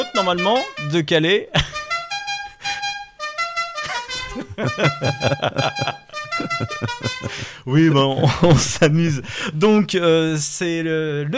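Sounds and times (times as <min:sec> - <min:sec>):
speech: 0:00.0 - 0:01.8, 0:04.6 - 0:06.0, 0:06.6 - 0:11.3
car horns honking: 0:00.0 - 0:07.6
laughter: 0:01.5 - 0:01.9, 0:03.8 - 0:09.8.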